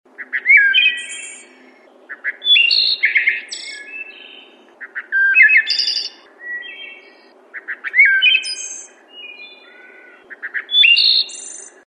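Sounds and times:
wood thrush singing: 0.1s - 11.8s.

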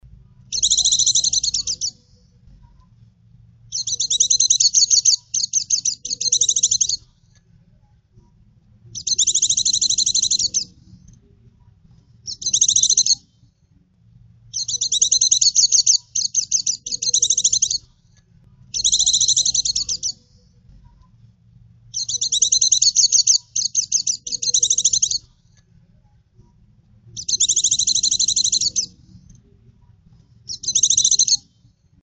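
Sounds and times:
pleci white-eye bird singing continuously: 0.5s - 2.4s, 3.7s - 7.2s, 8.9s - 11.0s, 12.2s - 13.5s, 14.5s - 18.0s, 18.7s - 20.6s, 21.9s - 25.4s, 27.1s - 29.3s, 30.5s - 31.8s.

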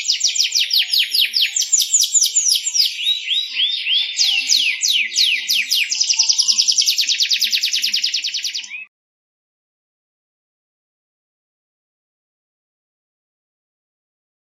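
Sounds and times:
kept canary song: 0.0s - 8.9s.

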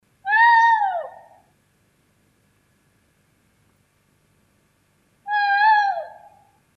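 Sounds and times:
Strix nebulosa calling: 0.2s - 1.5s, 5.3s - 6.5s.

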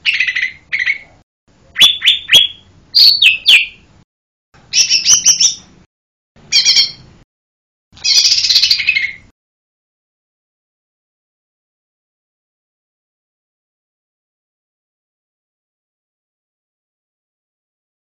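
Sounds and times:
lesser green leafbird singing whistles and chattering: 0.0s - 1.2s, 1.8s - 3.8s, 4.7s - 5.6s, 6.5s - 7.0s, 8.0s - 9.3s.

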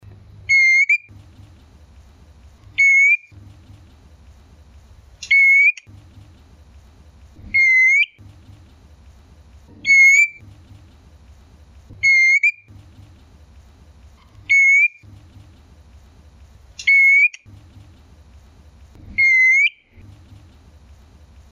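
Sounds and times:
female magpie robin singing: 0.4s - 1.2s, 2.7s - 3.4s, 5.2s - 5.9s, 7.4s - 8.3s, 9.8s - 10.7s, 12.0s - 12.7s, 14.2s - 15.5s, 16.8s - 17.5s, 19.1s - 20.4s.

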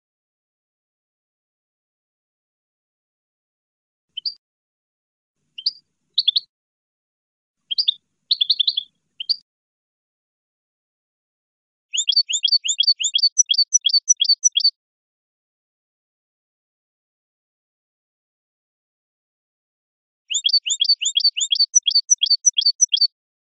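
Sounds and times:
goldfinch song: 5.6s - 6.5s, 7.7s - 9.4s, 11.9s - 14.7s, 20.3s - 23.1s.

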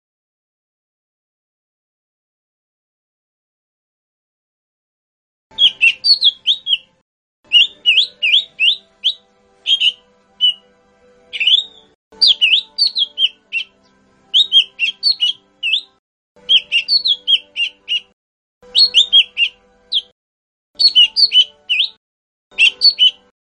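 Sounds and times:
lesser green leafbird song with chattering phrases of rising whistles and chirps: 5.5s - 6.9s, 7.5s - 10.6s, 11.3s - 20.1s, 20.8s - 23.3s.

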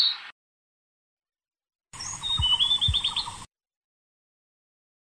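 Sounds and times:
blue-throated flycatcher song with sweet high warbled notes: 1.9s - 3.5s
low thumps: 1.9s - 3.5s.

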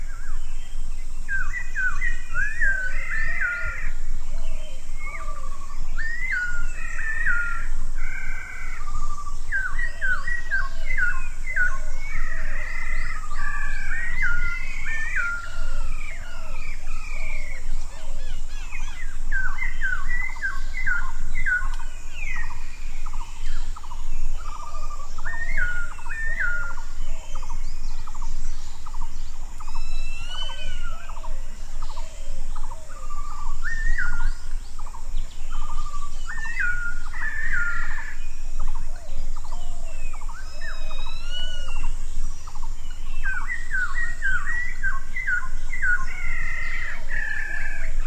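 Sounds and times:
red-backed laughingthrush calls: 1.3s - 48.0s.

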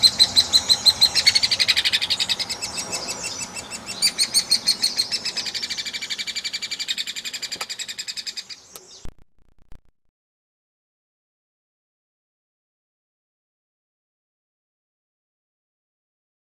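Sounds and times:
hairy woodpecker dense run of sharp high notes: 0.0s - 9.1s.

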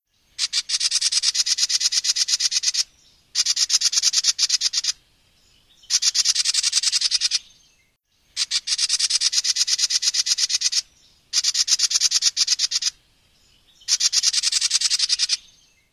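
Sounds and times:
house wren singing: 0.3s - 15.9s.

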